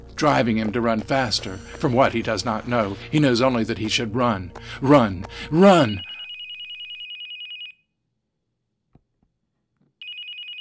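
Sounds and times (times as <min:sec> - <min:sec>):
speech: 0:00.2 - 0:06.1
telephone ringing with an electronic trill: 0:05.6 - 0:07.8, 0:10.0 - 0:10.5.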